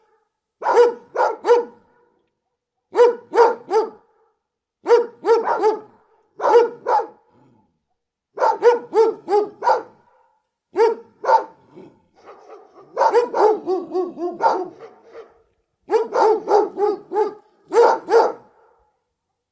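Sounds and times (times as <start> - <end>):
big dogs barking: 0.6 - 2.0, 2.9 - 4.0, 4.9 - 7.2, 8.4 - 11.6, 12.2 - 18.8.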